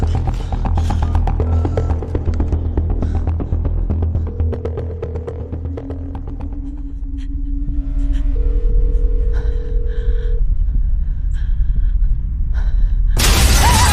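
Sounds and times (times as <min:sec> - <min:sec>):
low rumbling drone: 0:00.0 - 0:13.9
house window shattering: 0:13.2 - 0:13.9.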